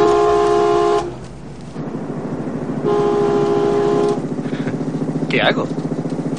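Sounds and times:
vehicle horn honking in greeting: 0.0 - 1.2, 2.8 - 4.3
steady vehicle engine rumble: 0.0 - 6.3
speech: 5.3 - 5.8.

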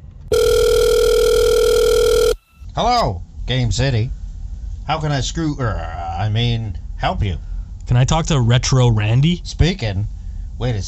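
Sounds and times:
steady telephone line tone through a handset: 0.0 - 2.6
phone being picked up: 0.3 - 2.4
speech: 2.8 - 4.2, 4.9 - 10.8.

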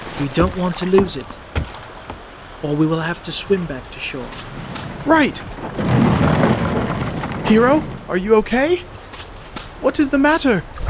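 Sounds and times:
speech: 0.2 - 1.4, 2.6 - 5.9, 7.5 - 8.9, 9.8 - 10.8
deep rolling rumble of thunder: 4.4 - 8.2.

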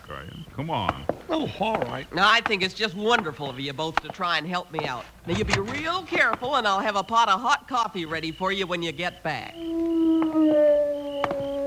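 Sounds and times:
speech: 0.1 - 10.6
wolf howling: 9.4 - 11.6.

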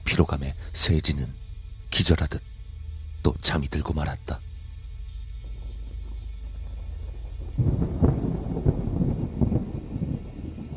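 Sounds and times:
speech: 0.1 - 2.5, 3.2 - 4.5
deep rumbling thunder crash: 6.7 - 10.7.

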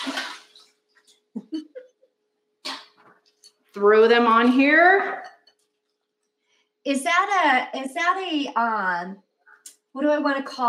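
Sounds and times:
water splashing as carrots are drained: 0.0 - 0.8
speech: 3.8 - 5.2, 6.9 - 9.2, 10.0 - 10.6.

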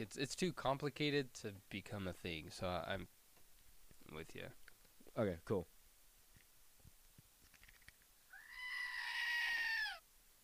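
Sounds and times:
speech: 0.0 - 3.2, 4.0 - 4.6, 5.2 - 5.7
goat screaming with a shrill strained bleat: 8.3 - 10.0.

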